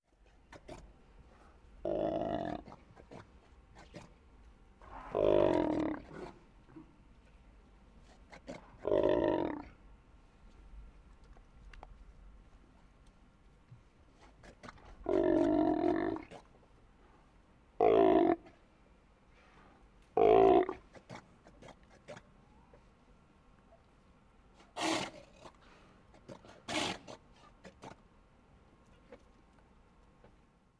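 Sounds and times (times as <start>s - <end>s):
animal in cage roaring: 1.8s - 2.8s, 4.8s - 6.4s, 8.5s - 9.8s, 15.0s - 16.4s, 17.8s - 18.6s, 20.2s - 20.9s, 24.8s - 25.6s, 26.3s - 27.2s.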